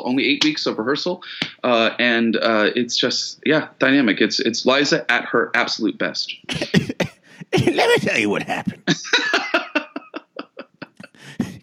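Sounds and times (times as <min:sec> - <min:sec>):
speech: 0:00.0 - 0:06.9, 0:07.6 - 0:09.3
person fake coughing as part of an impression: 0:06.4 - 0:08.8
laughter: 0:06.5 - 0:11.6.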